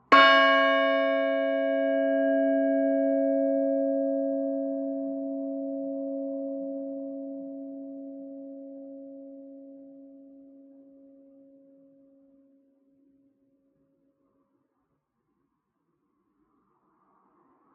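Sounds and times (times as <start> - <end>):
bells: 0.0 - 7.4.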